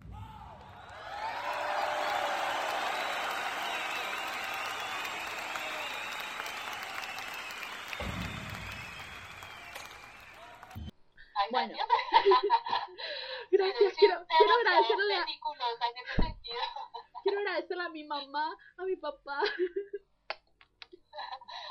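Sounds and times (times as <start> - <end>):
applause from a small crowd: 0.3 - 10.9
thump: 8.0 - 8.8
speech: 11.4 - 12.6, 14.4 - 16.7, 17.5 - 19.8.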